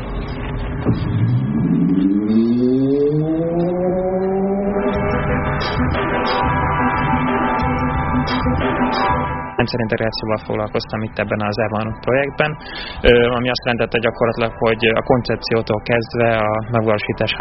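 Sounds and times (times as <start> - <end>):
car engine accelerating as forward gear is engaged: 0.0 - 9.5
speech: 9.6 - 17.3.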